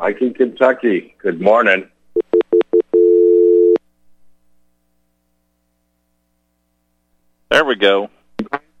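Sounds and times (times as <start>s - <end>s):
speech: 0.0s - 1.9s, 7.5s - 8.6s
telephone dial tone on a call line: 2.2s - 3.8s.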